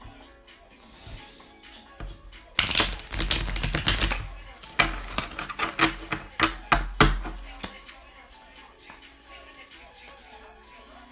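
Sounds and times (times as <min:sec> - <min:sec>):
deck of cards being shuffled: 0:02.6 - 0:06.3.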